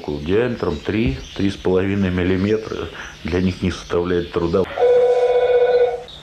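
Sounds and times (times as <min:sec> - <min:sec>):
speech: 0:00.0 - 0:04.6
telephone ringing in short bursts: 0:04.7 - 0:06.1.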